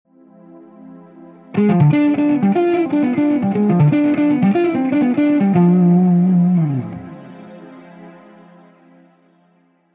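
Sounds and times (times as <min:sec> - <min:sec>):
C harmonic major scale exercise: 0:01.6 - 0:07.6.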